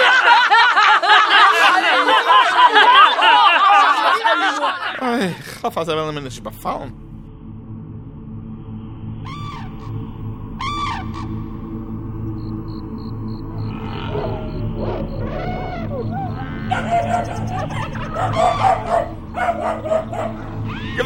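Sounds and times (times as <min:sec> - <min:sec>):
laughter: 0:00.0 - 0:05.8, 0:15.2 - 0:21.0
speech: 0:05.2 - 0:07.1, 0:16.8 - 0:20.4
steady low rumble: 0:05.6 - 0:21.0
growling tigers: 0:13.5 - 0:21.0
trumpeting elephants: 0:13.6 - 0:21.0
chattering monkeys: 0:13.7 - 0:21.0.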